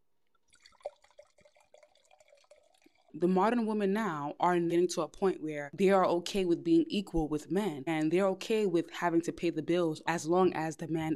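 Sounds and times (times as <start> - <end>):
drink pouring into a glass: 0.5 - 3.2
speech: 3.2 - 11.1.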